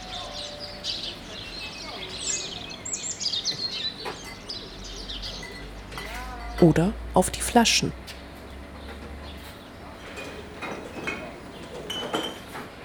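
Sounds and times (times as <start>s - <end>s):
several birds chirping and warbling: 0.0s - 6.6s
speech: 6.6s - 8.0s.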